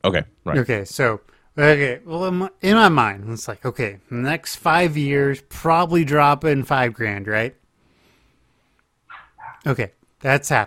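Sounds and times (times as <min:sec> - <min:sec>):
speech: 0:00.0 - 0:07.6, 0:09.6 - 0:10.6
high-pitched puppy barking: 0:09.1 - 0:09.7.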